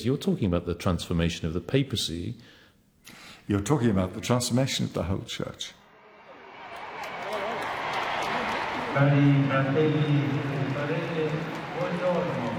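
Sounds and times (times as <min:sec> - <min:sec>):
speech: 0:00.0 - 0:05.8, 0:09.0 - 0:12.5
large crowd cheering and clapping at papal midday prayer: 0:06.0 - 0:12.5.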